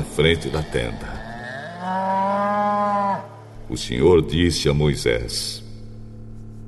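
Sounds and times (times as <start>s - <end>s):
speech: 0.2s - 1.2s, 1.8s - 5.6s
ox mooing: 0.2s - 3.5s.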